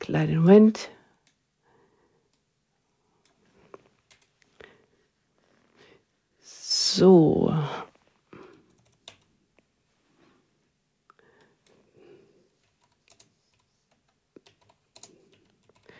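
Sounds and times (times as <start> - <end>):
speech: 0.1 - 1.0, 7.0 - 7.9
typing on a computer keyboard: 4.1 - 4.3, 8.5 - 9.3, 12.6 - 15.9.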